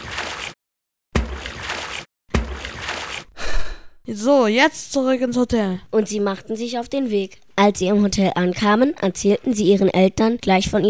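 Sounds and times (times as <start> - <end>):
sealed bottles thrown splashing into water: 0.0 - 0.6, 1.2 - 3.8
speech: 4.1 - 10.8.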